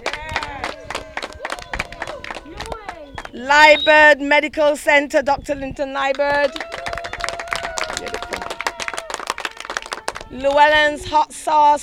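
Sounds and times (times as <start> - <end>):
crowd applause at a sports event: 0.0 - 3.4, 6.4 - 10.7
voices cheering and calling out: 0.0 - 4.1, 6.1 - 11.1
speech: 3.4 - 6.7, 10.3 - 11.8.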